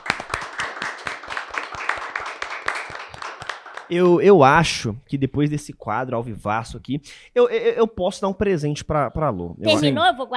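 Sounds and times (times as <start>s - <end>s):
small group clapping in a studio: 0.0s - 4.1s
speech: 3.9s - 10.3s.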